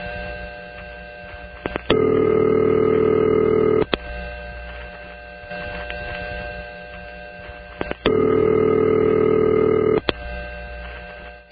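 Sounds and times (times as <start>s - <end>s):
number one crossbar telephone exchange ringing: 1.9s - 3.9s, 8.0s - 10.1s.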